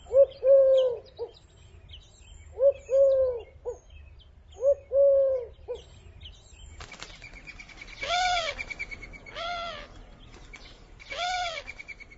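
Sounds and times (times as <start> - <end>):
Eurasian collared dove cooing in three-note phrases: 0.0 - 1.4, 2.5 - 3.8, 4.6 - 5.9, 7.9 - 10.0, 11.0 - 12.0
faint noise: 0.0 - 12.1.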